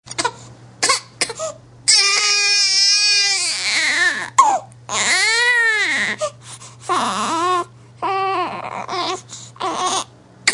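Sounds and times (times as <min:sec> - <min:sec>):
baby crying hard: 0:01.9 - 0:06.2, 0:06.9 - 0:10.5.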